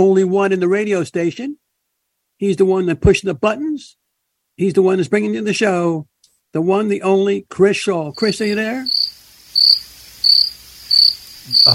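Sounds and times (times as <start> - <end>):
speech: 0.0 - 1.6, 2.4 - 4.0, 4.6 - 10.1
faint hiss: 0.0 - 11.7
crickets chirping: 8.1 - 11.7.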